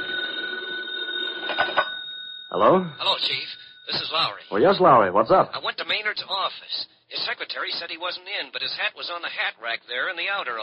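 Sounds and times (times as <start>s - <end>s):
telephone bell ringing in an office: 0.0s - 4.5s
speech: 2.6s - 10.6s.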